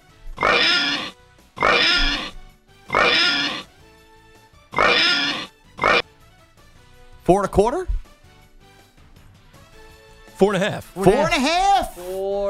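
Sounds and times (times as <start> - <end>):
pig oinking: 0.4 - 3.7, 4.7 - 6.1
speech: 7.3 - 8.0, 10.4 - 12.4.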